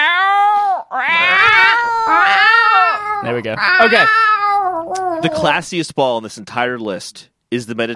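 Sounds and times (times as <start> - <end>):
person imitating cat meows: 0.0 - 5.5
speech: 3.2 - 4.3, 4.9 - 7.9.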